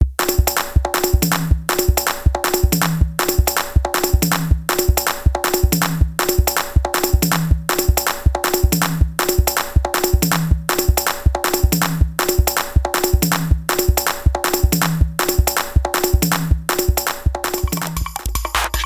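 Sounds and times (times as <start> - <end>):
click track for gospel music: 0.2 - 18.8.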